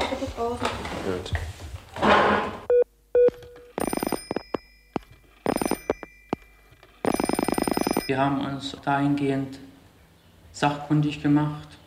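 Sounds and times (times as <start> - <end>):
speech: 0.3 - 1.6, 8.1 - 9.7, 10.6 - 11.8
bright bell-like telephone ringing while placing a call: 3.4 - 8.1.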